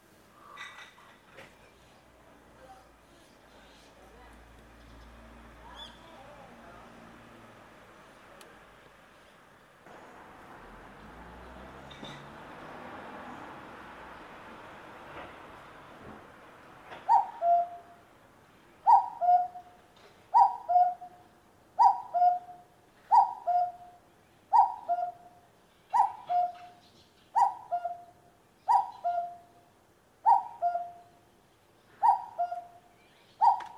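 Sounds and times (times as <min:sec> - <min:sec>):
cuckoo calling in the morning: 0:17.0 - 0:18.0, 0:18.8 - 0:31.2, 0:32.0 - 0:33.7.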